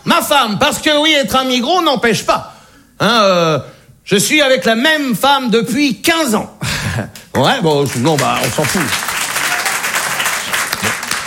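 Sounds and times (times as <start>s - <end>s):
speech: 0.2s - 9.0s
crowd applauding: 7.2s - 11.2s.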